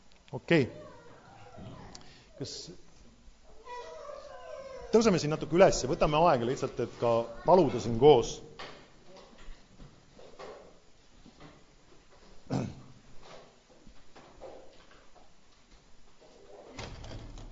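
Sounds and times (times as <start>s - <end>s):
speech: 0.3s - 0.8s, 2.4s - 2.8s, 4.9s - 8.5s
door pulled open with a solid clunk and brief rattle: 16.7s - 17.5s.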